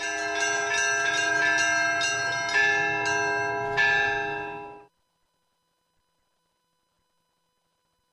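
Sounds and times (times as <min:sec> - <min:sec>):
church bells ringing in a peal: 0:00.0 - 0:04.9.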